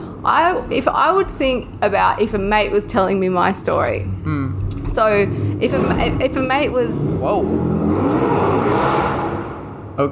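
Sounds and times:
car engine revving loudly on a city street: 0.0s - 10.1s
speech: 0.3s - 8.5s, 10.0s - 10.1s.

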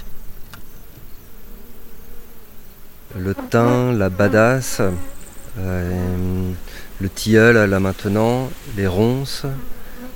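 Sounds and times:
honeybees buzzing around the hive: 0.0s - 10.1s
speech: 3.1s - 9.8s.

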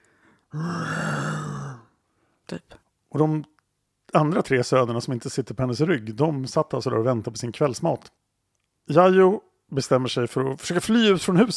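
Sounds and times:
speech: 0.5s - 0.9s, 2.5s - 3.5s, 4.1s - 8.2s, 8.8s - 11.5s
person imitating a bear growl: 0.5s - 1.9s.

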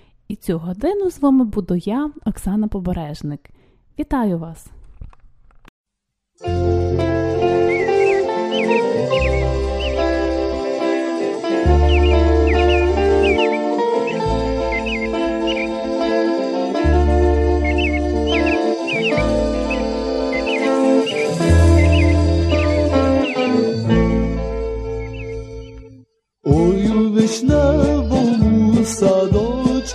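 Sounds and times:
speech: 0.4s - 4.8s
instrumental music track with a rhythmic bass: 6.4s - 29.9s
nightingale chirping and trilling: 6.5s - 29.9s.

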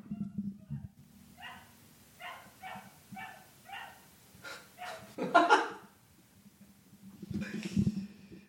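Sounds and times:
neighbour's dog howling and barking: 0.0s - 4.1s, 4.8s - 5.2s
laughter: 4.8s - 5.9s.

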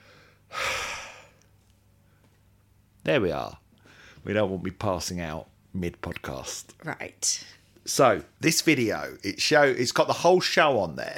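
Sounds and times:
winded person taking a sharp gasp of breath: 0.0s - 1.4s
speech: 3.1s - 3.6s, 4.2s - 11.1s.

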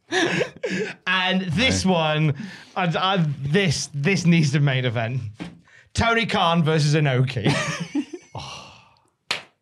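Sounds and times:
laughter: 0.1s - 2.0s, 7.4s - 8.7s
speech: 0.3s - 8.5s
person groaning exhale and brief grunts: 8.3s - 9.0s
single sharp slap to the face: 9.3s - 9.6s.

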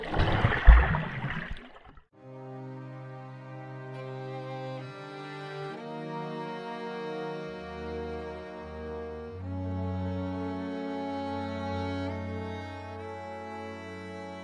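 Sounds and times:
churning, gurgling underwater bubbles: 0.0s - 2.0s
loud plunge into water: 0.0s - 2.1s
steady sustained music with layered tones: 2.2s - 14.4s.

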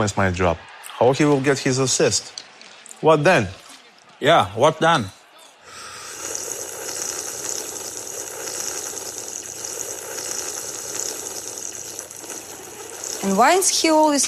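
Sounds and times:
speech: 0.0s - 2.4s, 3.0s - 3.6s, 4.2s - 5.2s, 13.3s - 14.2s
loud slurping of liquid: 5.7s - 14.2s.

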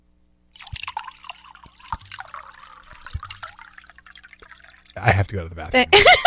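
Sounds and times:
wine pouring into a glass: 0.6s - 5.4s
speech: 5.0s - 6.2s.

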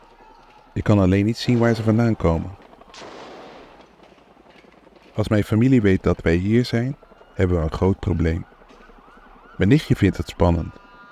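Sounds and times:
low outdoor rumble: 0.0s - 11.0s
speech: 0.8s - 3.1s, 5.2s - 8.5s, 9.6s - 10.8s
booming gunshots with rolling echo: 1.5s - 5.2s.

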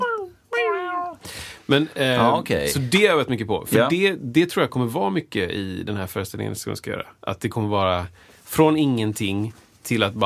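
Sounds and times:
cat meowing: 0.0s - 1.2s
speech: 1.7s - 10.2s.

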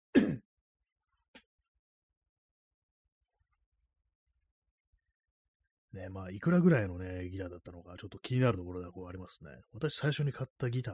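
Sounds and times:
short gruff throat clearing: 0.1s - 0.5s
speech: 6.0s - 10.9s.

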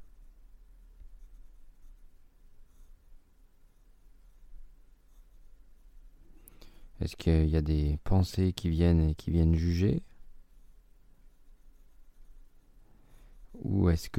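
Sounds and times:
pen scratching on paper: 1.0s - 6.2s, 9.6s - 13.6s
speech: 7.0s - 10.1s, 13.6s - 14.1s.

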